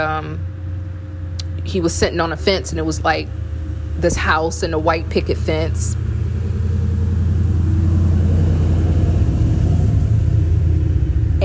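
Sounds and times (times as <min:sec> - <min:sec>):
speech: 0:00.0 - 0:00.5, 0:01.6 - 0:03.4, 0:04.0 - 0:06.1
heavy vehicle engine rumbling: 0:00.0 - 0:11.4.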